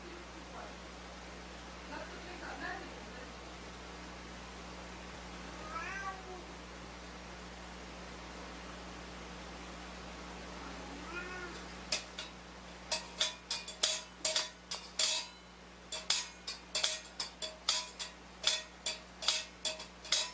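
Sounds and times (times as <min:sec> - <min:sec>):
low electrical hum: 0:00.0 - 0:20.3
hungry cat meowing insistently: 0:05.5 - 0:06.5, 0:10.7 - 0:11.7.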